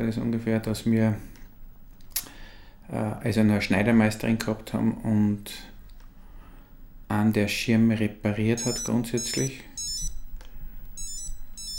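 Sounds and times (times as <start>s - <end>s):
speech: 0.0s - 1.3s, 2.9s - 5.7s, 7.1s - 9.7s
mobile phone alarm chiming: 8.6s - 10.3s, 11.0s - 11.7s.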